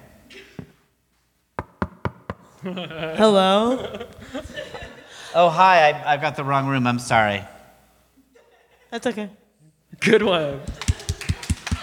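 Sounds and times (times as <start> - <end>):
knocks on a hard surface like a door: 1.6 - 2.5
laughter: 2.6 - 5.4, 10.3 - 11.8
speech: 2.6 - 7.5, 8.9 - 9.4, 10.0 - 10.8.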